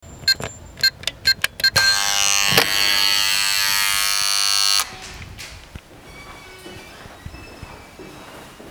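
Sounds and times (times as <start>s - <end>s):
door access sound: 0.0s - 6.9s.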